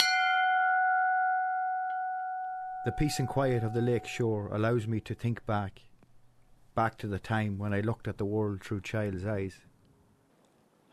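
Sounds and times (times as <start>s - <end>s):
bell rung beside a lakeside quay: 0.0s - 4.6s
speech: 2.8s - 5.9s, 6.8s - 9.7s.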